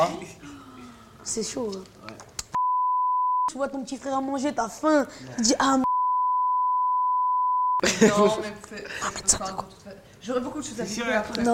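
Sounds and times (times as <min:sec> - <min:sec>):
speech: 0:00.0 - 0:00.2, 0:01.3 - 0:02.0, 0:03.6 - 0:05.9, 0:08.0 - 0:11.5
censor bleep: 0:02.6 - 0:03.5, 0:05.8 - 0:07.8.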